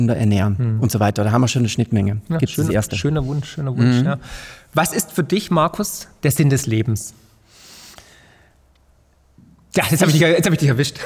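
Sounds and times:
speech: 0.0 - 7.2, 9.8 - 11.0
deep audible breath: 4.2 - 4.7, 7.3 - 8.6.

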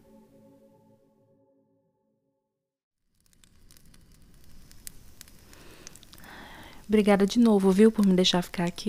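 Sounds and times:
sustained musical tone: 0.0 - 2.4
campfire crackling with sharp pops and snaps: 3.2 - 8.3
speech: 6.9 - 8.8.

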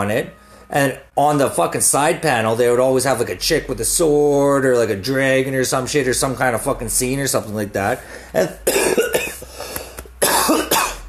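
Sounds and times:
speech: 0.0 - 9.0
person coughing: 8.4 - 11.0.

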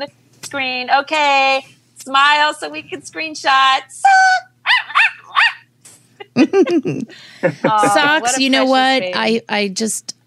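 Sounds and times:
speech: 0.0 - 4.5, 6.4 - 10.2
dog whining yelps: 4.6 - 5.7
laughter: 6.2 - 9.2.

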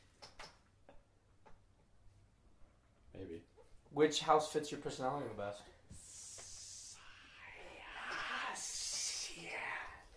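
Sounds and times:
speech: 3.3 - 5.8
person imitating a snake's hiss: 5.9 - 10.1.

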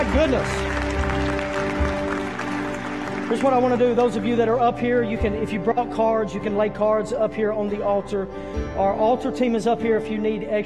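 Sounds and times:
speech: 0.0 - 0.7, 3.3 - 10.6
congregation clapping in applause: 0.0 - 4.8.

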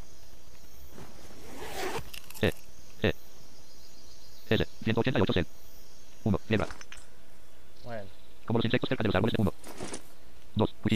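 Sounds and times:
faint steady hum: 0.0 - 10.9
video game backpack zipper opening: 0.9 - 2.5
speech: 2.4 - 3.2, 4.5 - 5.6, 6.3 - 6.9, 8.5 - 10.0, 10.6 - 10.9.

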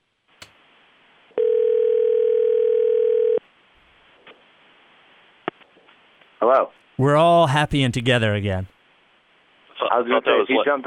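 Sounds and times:
telephone dial tone after a dropped call: 1.4 - 3.4
speech: 6.4 - 8.7, 10.0 - 10.8.

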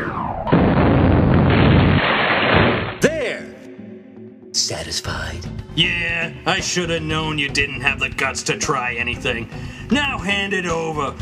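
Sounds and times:
weapon fired as a test: 0.0 - 3.3
speech: 4.7 - 11.2.

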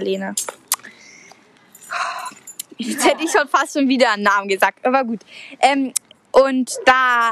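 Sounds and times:
speech: 0.0 - 0.6, 2.8 - 7.3
keys jangling: 1.7 - 2.8.

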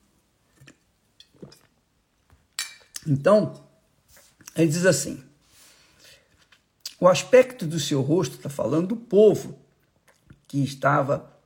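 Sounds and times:
person gulping water from a glass: 0.5 - 1.8
speech: 3.0 - 3.6, 4.6 - 5.3, 7.0 - 9.6, 10.5 - 11.3.

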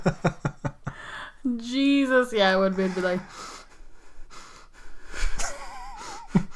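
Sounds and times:
speech: 0.0 - 0.3, 1.6 - 3.5
heavy wheezing nasal breathing of a female with nose problems: 2.6 - 6.3.

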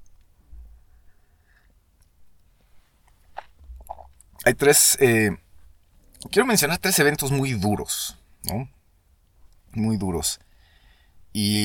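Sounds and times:
small mouth and swallowing noises: 3.1 - 4.4
sipping of coffee: 3.8 - 4.4
speech: 4.5 - 5.4, 6.2 - 8.8, 9.7 - 10.5, 11.3 - 11.6.

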